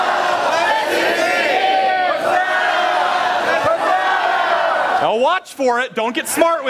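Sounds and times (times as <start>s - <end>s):
large audience shouting a single word in unison: 0.0s - 5.1s
speech: 5.1s - 6.6s.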